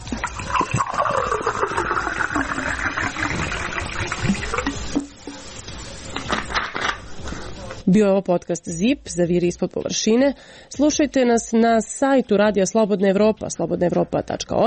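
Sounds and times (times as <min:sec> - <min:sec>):
bottled water poured into a glass for a toast in Zrenjanin Serbia: 0:00.0 - 0:05.1
speech: 0:07.9 - 0:14.6.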